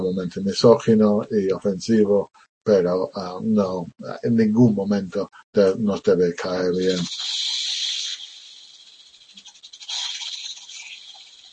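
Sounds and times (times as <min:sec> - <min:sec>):
speech: 0:00.0 - 0:07.6
snakes hissing: 0:06.7 - 0:11.5.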